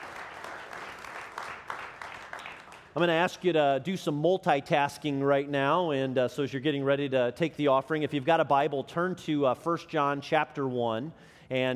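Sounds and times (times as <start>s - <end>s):
large audience cheering and applauding: 0.0s - 3.0s
speech: 3.0s - 11.7s.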